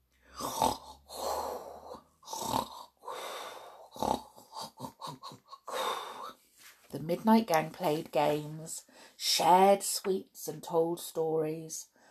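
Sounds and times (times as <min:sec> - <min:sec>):
woman snoring asleep in a bed: 0:00.3 - 0:06.4
speech: 0:07.1 - 0:11.9.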